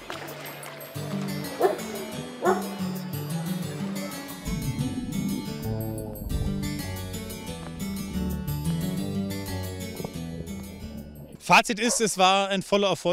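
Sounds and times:
outdoor bustle at a chlorine-free outdoor public swimming pool: 0.0 - 8.8
music at an outdoor public swimming pool: 0.0 - 11.6
sharp dog barks at an outdoor public swimming pool: 1.6 - 1.8, 2.4 - 2.8, 11.8 - 12.1
speech: 11.5 - 13.1.

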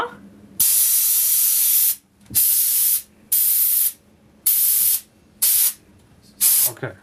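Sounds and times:
fire extinguisher filled with compressed air spraying: 0.6 - 5.8, 6.4 - 6.8.

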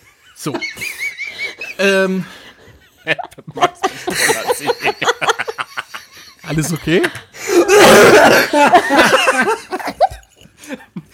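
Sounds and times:
laughter: 0.0 - 11.1
speech: 0.4 - 1.1, 1.8 - 2.4, 3.0 - 5.2, 6.5 - 9.6
person coughing harshly: 7.5 - 8.7.

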